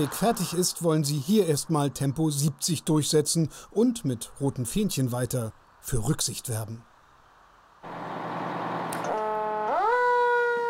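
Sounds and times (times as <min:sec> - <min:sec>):
speech: 0:00.0 - 0:06.9
emergency vehicle siren: 0:07.9 - 0:10.6.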